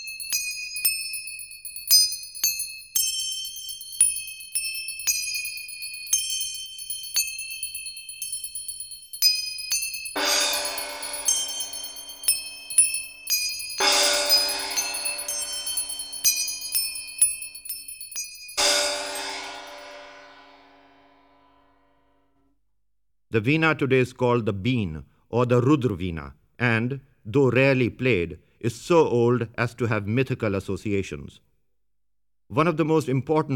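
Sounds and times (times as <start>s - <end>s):
small hand cymbals struck: 0.0s - 21.6s
gongs struck: 10.2s - 13.2s, 13.8s - 16.8s, 18.6s - 21.8s
shimmering cymbal crashes: 10.2s - 17.2s, 18.6s - 21.9s
speech: 23.3s - 31.5s, 32.5s - 33.5s.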